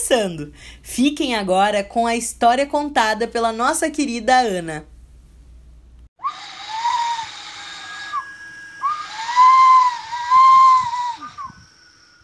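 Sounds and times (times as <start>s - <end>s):
speech: 0.1s - 4.9s
strong whistling wind gusts: 6.2s - 12.2s.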